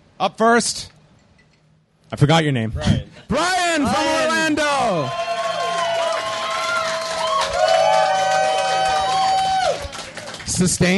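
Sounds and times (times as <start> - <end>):
speech: 0.2 - 1.0, 2.1 - 5.3, 10.6 - 10.9
audience whoops and yells: 3.9 - 10.0
audience applause for a contestant: 4.4 - 10.9.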